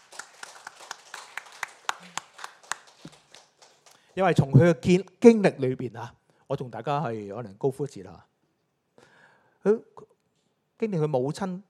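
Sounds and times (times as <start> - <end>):
church congregation clapping: 0.0 - 4.5
speech: 4.2 - 8.3, 9.6 - 10.2, 10.8 - 11.6.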